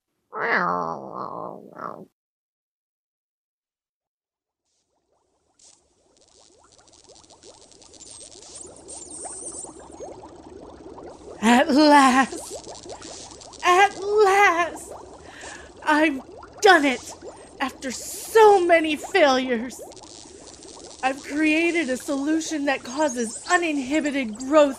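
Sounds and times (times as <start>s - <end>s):
cat meowing in a kitchen: 0.4s - 2.0s
low bubbling rustle: 4.9s - 24.7s
speech: 16.8s - 17.2s, 17.8s - 20.0s, 21.0s - 24.7s.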